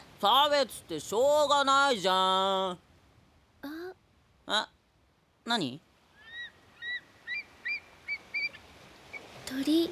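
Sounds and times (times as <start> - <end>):
speech: 0.2 - 2.9, 4.5 - 4.8, 5.5 - 5.9, 9.5 - 9.9
white birds calling at the sea at sunset: 6.2 - 9.4.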